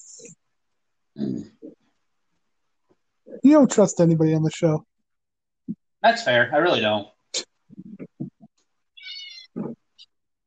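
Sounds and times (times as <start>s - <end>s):
speech: 3.5s - 4.9s, 6.0s - 7.1s
cat meowing: 9.0s - 9.6s.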